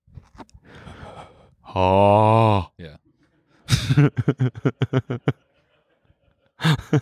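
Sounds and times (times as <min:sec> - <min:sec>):
person imitating eerie ghostly breathing: 0:00.7 - 0:02.7
speech: 0:01.8 - 0:03.0, 0:04.0 - 0:05.4
laughter: 0:03.3 - 0:07.0.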